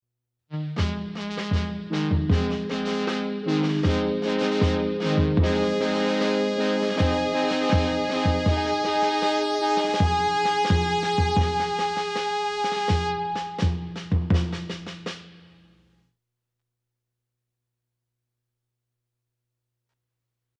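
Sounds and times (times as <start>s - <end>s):
fanfare: 0.6s - 14.0s.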